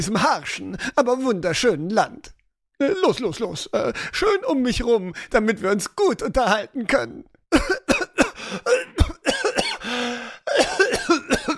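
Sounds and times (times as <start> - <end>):
speech: 0.0 - 7.8
person coughing: 7.5 - 11.5
raspy wheezing breath: 8.3 - 8.7, 9.8 - 10.5.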